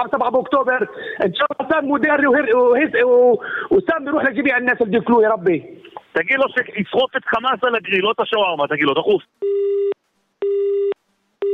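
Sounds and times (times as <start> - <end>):
speech: 0.0 - 9.8
telephone busy tone after a call is hung up: 9.4 - 11.5.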